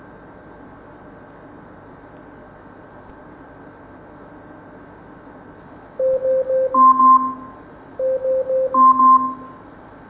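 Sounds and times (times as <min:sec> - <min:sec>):
Amazon Echo smart speaker timer alarm quick electronic beeps: 0:06.1 - 0:09.6
Amazon Echo smart speaker timer alarm two-tone chime: 0:06.8 - 0:09.6.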